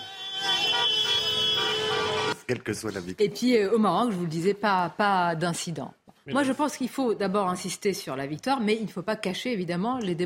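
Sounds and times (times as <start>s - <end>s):
car horns honking in celebration in traffic: 0.0s - 2.4s
faint street noise: 0.0s - 10.2s
speech: 2.5s - 10.2s.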